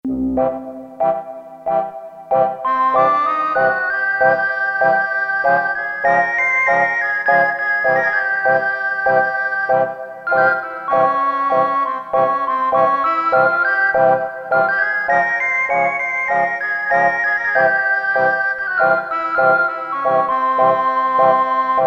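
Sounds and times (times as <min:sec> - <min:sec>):
synthesized oboe woodwind sound: 0:00.0 - 0:21.8.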